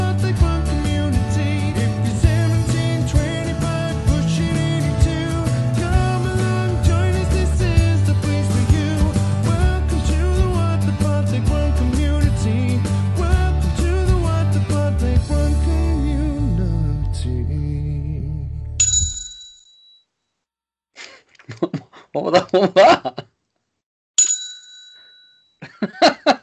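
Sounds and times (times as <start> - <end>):
music: 0.0 - 18.8
small bell ringing: 18.8 - 20.0, 24.2 - 25.6
laughter: 21.0 - 23.2, 25.6 - 26.4
people talking: 21.5 - 23.2.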